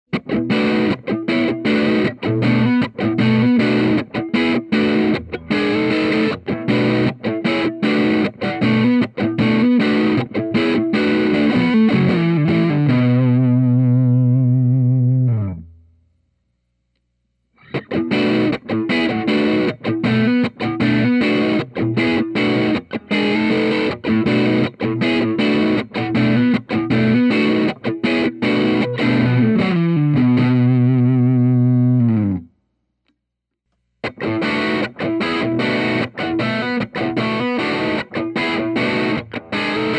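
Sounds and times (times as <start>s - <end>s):
double cut humbucker electric guitar with distortion: 0.1s - 15.9s, 17.6s - 32.5s, 34.0s - 39.9s.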